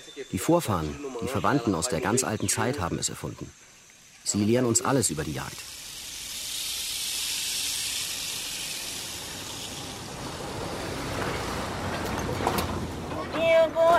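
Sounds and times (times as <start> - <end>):
speech: 0.2 - 5.8
boat travelling across water with hiss of spray and wind: 8.8 - 13.9.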